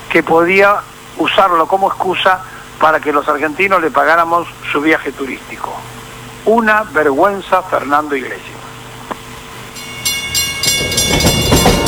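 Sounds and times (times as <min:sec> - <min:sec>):
speech: 0:00.2 - 0:08.5
train running on rails: 0:09.7 - 0:11.8.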